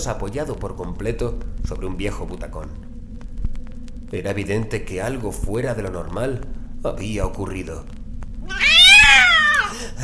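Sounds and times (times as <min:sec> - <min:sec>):
speech: 0:00.0 - 0:02.9, 0:04.1 - 0:08.0
cat meowing: 0:08.4 - 0:09.8.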